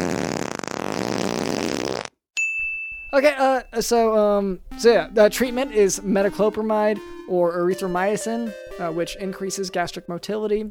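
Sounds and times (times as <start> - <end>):
fart sound: 0.0 - 2.2
high-pitched electronic blip: 2.6 - 10.6
speech: 3.2 - 10.6.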